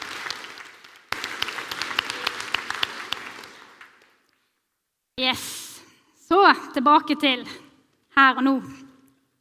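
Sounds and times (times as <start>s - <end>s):
audience at a church service applauding: 0.0s - 4.3s
speech: 5.2s - 5.6s, 6.3s - 7.6s, 8.2s - 8.8s.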